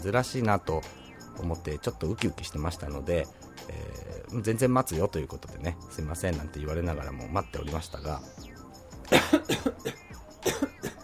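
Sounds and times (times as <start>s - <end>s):
speech: 0.0s - 10.0s
person with a cough coughing: 9.1s - 11.0s.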